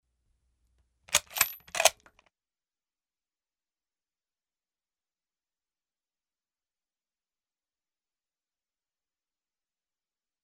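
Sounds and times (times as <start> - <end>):
British Enfield No.4 Mk 1 WW2 era bolt action rifle operated fast: 1.1 - 2.2.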